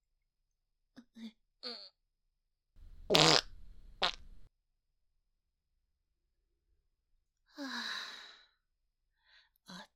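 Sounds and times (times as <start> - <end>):
speech: 1.2 - 1.8
sputtering fart with a low rumble: 3.1 - 4.2.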